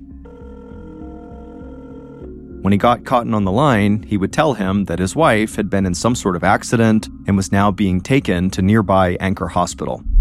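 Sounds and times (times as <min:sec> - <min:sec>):
telephone ringing: 0:00.0 - 0:03.2
speech: 0:02.6 - 0:10.1.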